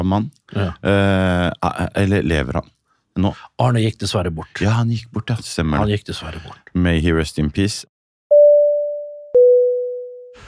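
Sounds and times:
speech: 0.0 - 7.9
phone message notification chime: 8.3 - 10.4.

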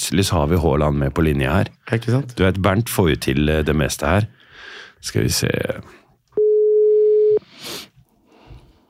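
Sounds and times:
speech: 0.1 - 4.4, 5.0 - 6.0
electronic phone call ringing tone: 6.4 - 7.4.

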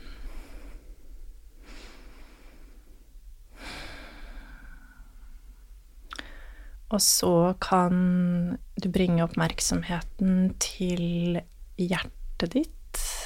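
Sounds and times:
slow deep breathing in and out: 0.0 - 6.9
speech: 6.9 - 12.8.

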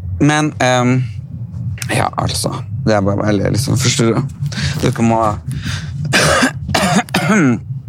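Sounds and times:
speech: 0.2 - 1.2, 1.9 - 6.3, 7.3 - 7.7
soft rasping breath: 5.5 - 6.2
harsh forceful coughing: 6.1 - 7.7.

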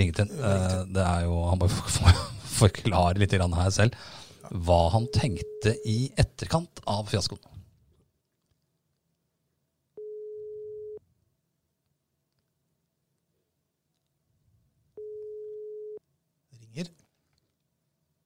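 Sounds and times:
speech: 0.0 - 7.5, 16.8 - 17.0
outgoing phone call ringing tone beeps: 5.0 - 5.9, 10.0 - 11.0, 15.0 - 16.0.

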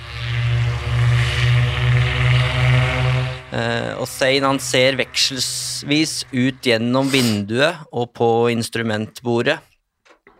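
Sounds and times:
airplane engines accelerating for takeoff at full throttle: 0.0 - 7.5
speech: 4.2 - 9.7.

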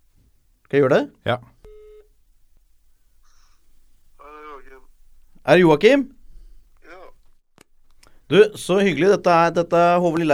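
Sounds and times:
faint hiss: 0.0 - 10.3
speech: 0.7 - 1.5, 5.5 - 6.2, 8.3 - 10.3
telephone ringing tone through the line while placing a call: 1.5 - 9.6
voices: 3.0 - 10.3.

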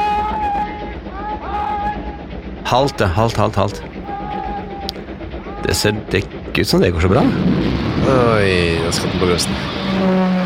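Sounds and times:
long sustained whistle-like tone: 0.0 - 1.0
train approaching along rails with heavy rumble: 0.0 - 10.4
speech: 2.7 - 3.9, 5.6 - 10.4.

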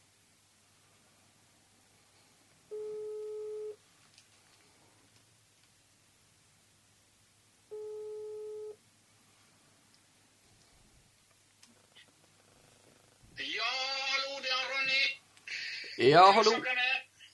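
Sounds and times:
faint hiss of noise: 0.0 - 17.3
telephone ringback tone while a phone call is being placed: 2.7 - 3.8, 7.7 - 8.8
speech: 16.0 - 16.9.

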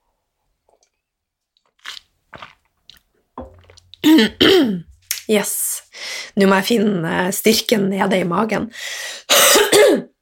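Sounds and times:
sip of water: 1.8 - 4.0
speech: 4.0 - 5.6, 6.4 - 8.9.

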